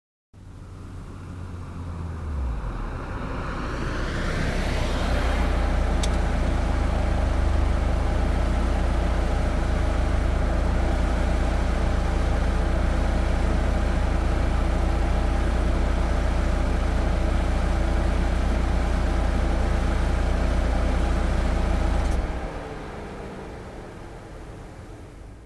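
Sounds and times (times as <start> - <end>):
Chevy car stopping fast: 0.4 - 25.4.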